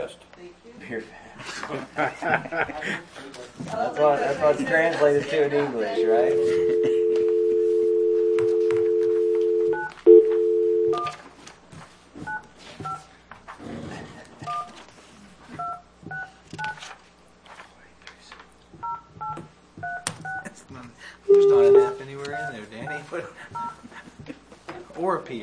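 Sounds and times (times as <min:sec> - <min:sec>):
speech: 0:00.0 - 0:06.9
laughter: 0:01.4 - 0:03.2
steady telephone tone: 0:06.0 - 0:11.2, 0:21.3 - 0:22.0
telephone keypad dialing tones: 0:06.2 - 0:11.2, 0:18.8 - 0:20.4, 0:21.3 - 0:23.0.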